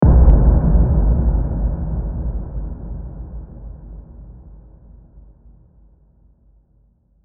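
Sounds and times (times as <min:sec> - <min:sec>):
impact: 0:00.0 - 0:04.9.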